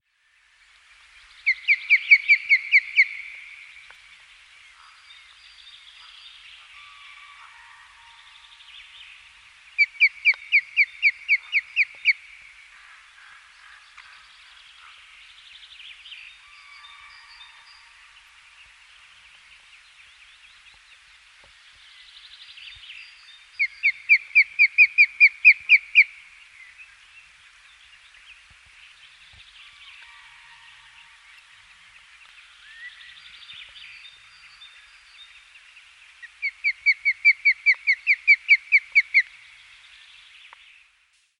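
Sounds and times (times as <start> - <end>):
osprey Pandion haliaetus calling: 1.4 - 3.5, 9.8 - 12.3, 23.6 - 26.2, 36.2 - 39.4.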